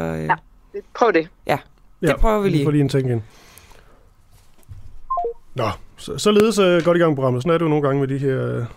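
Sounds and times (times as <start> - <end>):
speech: 0.0 - 3.5, 5.6 - 8.7
telephone dialing tones while redialing a call: 5.1 - 5.4.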